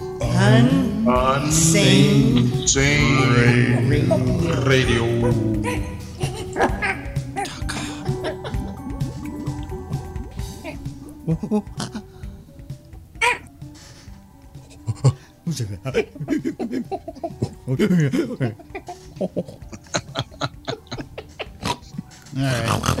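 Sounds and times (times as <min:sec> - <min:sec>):
speech: 0:00.4 - 0:06.1, 0:11.3 - 0:11.9, 0:17.8 - 0:18.6
person mimicking monkey chatter: 0:01.9 - 0:08.3, 0:09.0 - 0:12.1, 0:18.8 - 0:22.9
person mimicking pig-like oinks and grunts: 0:02.3 - 0:08.6, 0:10.4 - 0:12.1, 0:20.8 - 0:22.9
bursts of laughter: 0:02.5 - 0:09.6, 0:14.8 - 0:22.3.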